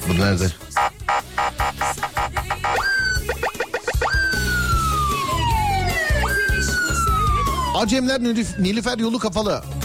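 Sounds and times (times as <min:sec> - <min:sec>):
speech: 0:00.1 - 0:00.9, 0:07.8 - 0:09.7
police siren yelping and wailing: 0:00.8 - 0:08.1.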